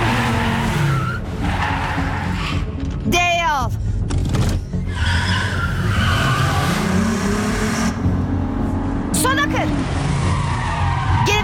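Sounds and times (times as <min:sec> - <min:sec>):
car tires skidding and squealing while reversing and turning right: 0:00.0 - 0:02.8, 0:04.8 - 0:08.0, 0:09.3 - 0:11.4
car engine: 0:00.0 - 0:03.1, 0:03.8 - 0:11.4.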